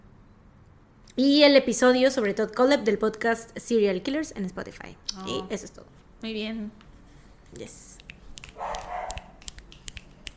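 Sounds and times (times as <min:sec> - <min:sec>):
speech: 0:01.2 - 0:06.8, 0:07.5 - 0:08.0
sharp irregular clicks: 0:08.0 - 0:10.3
neighbor's dog drawn-out bark: 0:08.6 - 0:09.4.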